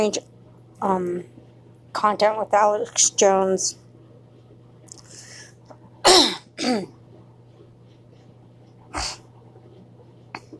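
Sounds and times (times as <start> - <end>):
speech: 0.0 - 1.4, 2.0 - 3.8, 6.6 - 7.0
steady low hum: 0.0 - 10.5
loud harsh coughs: 6.0 - 7.0.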